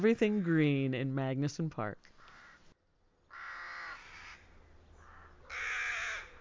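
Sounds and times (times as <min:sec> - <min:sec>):
speech: 0:00.0 - 0:02.2
crows cawing outdoors: 0:02.1 - 0:06.3.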